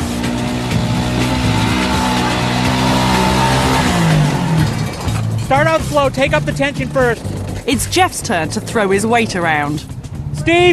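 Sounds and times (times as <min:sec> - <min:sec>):
Land Rover four-wheel drive engine revving: 0:00.0 - 0:10.7
speech: 0:05.5 - 0:10.7.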